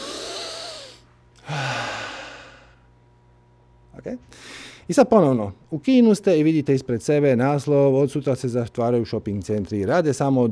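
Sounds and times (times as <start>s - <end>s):
deep breath in and out during a guided relaxation exercise: 0.0s - 2.9s, 4.3s - 4.9s
speech: 4.0s - 10.5s.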